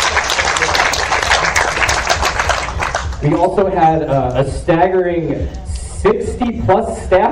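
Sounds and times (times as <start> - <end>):
crowd applauding: 0.0 - 3.7
speech: 3.2 - 7.3.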